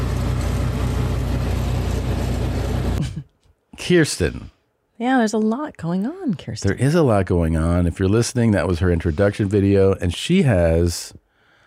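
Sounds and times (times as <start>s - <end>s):
car engine and road drone while driving home in Mesa: 0.0s - 3.0s
speech: 3.9s - 11.2s.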